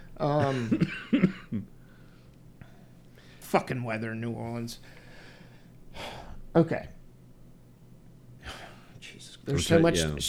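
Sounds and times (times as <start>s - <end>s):
person clearing throat: 0.2s - 1.7s
person coughing: 0.2s - 1.7s
speech: 0.2s - 1.7s, 3.5s - 5.0s, 6.6s - 7.0s, 9.0s - 10.2s.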